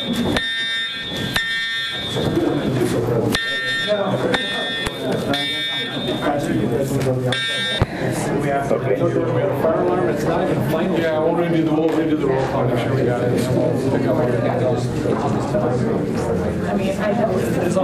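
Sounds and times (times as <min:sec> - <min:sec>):
fire alarm blaring in electronic pulses: 0:00.0 - 0:08.0
people moving about: 0:00.0 - 0:17.8
people talking: 0:00.0 - 0:17.8.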